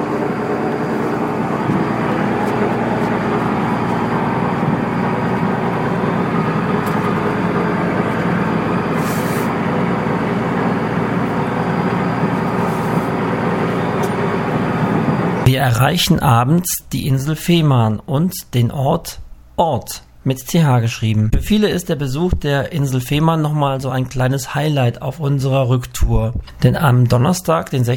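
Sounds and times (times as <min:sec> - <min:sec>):
sailboat engine droning while motoring: 0:00.0 - 0:16.0
speech: 0:15.6 - 0:27.9.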